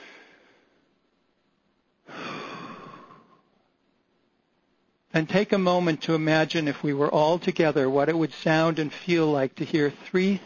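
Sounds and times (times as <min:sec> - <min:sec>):
soft breathing of audience: 0:00.0 - 0:00.9, 0:02.0 - 0:03.6
speech: 0:05.2 - 0:10.4.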